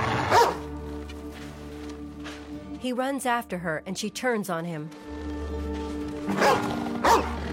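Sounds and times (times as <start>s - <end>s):
mother dog on a leash barking in a forest: 0.2s - 0.6s, 6.3s - 7.4s
speech: 2.8s - 5.4s.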